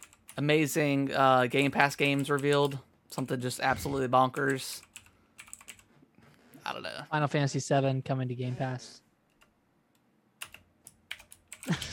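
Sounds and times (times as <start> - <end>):
typing on a computer keyboard: 0.0 - 0.4, 4.4 - 5.9, 10.4 - 11.9
speech: 0.4 - 4.9, 6.7 - 9.0.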